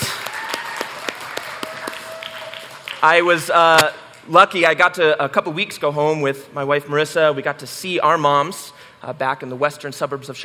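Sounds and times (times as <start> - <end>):
audience applause for moms on Mother's Day: 0.0 - 3.4
speech: 3.0 - 10.4.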